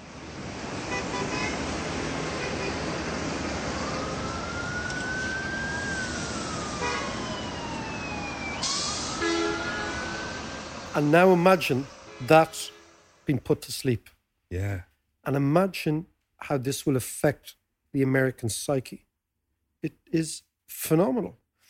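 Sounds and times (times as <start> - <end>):
traffic roar on a busy New York city street: 0.0 - 14.8
car horn honks: 0.9 - 1.6, 2.4 - 2.8, 9.2 - 10.1, 12.0 - 13.0
siren wailing: 2.5 - 13.2
speech: 11.0 - 19.1, 19.8 - 21.4.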